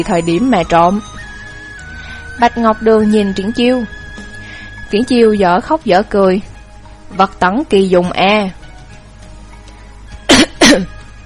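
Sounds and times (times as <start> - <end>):
speech: 0.0 - 1.1, 2.4 - 4.0, 4.9 - 6.5, 7.1 - 8.6, 10.7 - 10.9
man giving a dry cough: 10.3 - 11.0.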